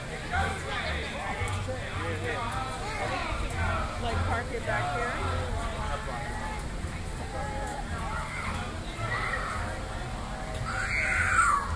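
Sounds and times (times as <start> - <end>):
crowd chatter and bustle at a theme park: 0.0 - 11.7
child screaming in a theme park: 10.7 - 11.7.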